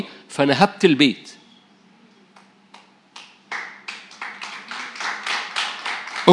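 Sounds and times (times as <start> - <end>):
speech: 0.0 - 1.4
audience applause: 3.2 - 6.3.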